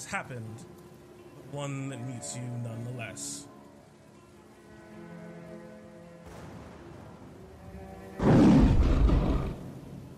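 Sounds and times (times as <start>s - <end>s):
speech: 0.0s - 0.8s, 1.5s - 3.6s
deep thunderous roar of an unseen creature: 8.1s - 9.7s.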